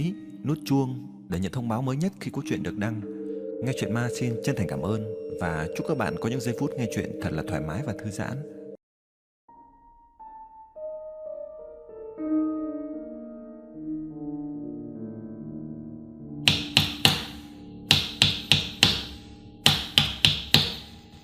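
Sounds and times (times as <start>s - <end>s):
speech: 0.0s - 8.6s
soft tonal music: 0.0s - 8.8s, 9.5s - 21.2s
knocking on a door from outside: 16.4s - 20.9s.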